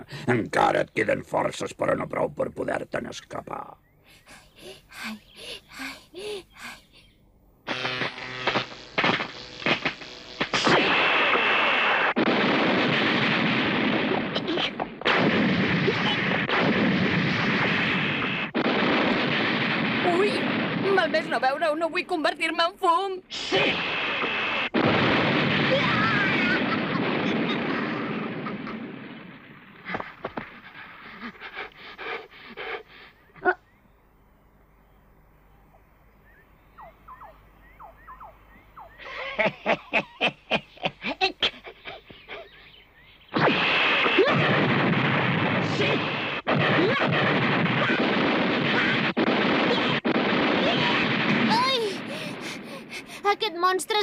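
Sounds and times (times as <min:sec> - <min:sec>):
speech: 0:00.0 - 0:06.8, 0:21.0 - 0:24.2
fireworks exploding: 0:07.7 - 0:21.6, 0:23.3 - 0:31.6, 0:43.3 - 0:53.4
laughter: 0:39.0 - 0:42.5.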